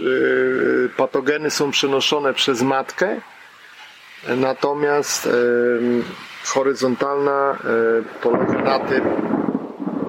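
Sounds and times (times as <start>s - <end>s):
speech: 1.0s - 3.4s, 4.2s - 9.2s
thunder rumbling during a thunderstorm: 5.2s - 10.0s.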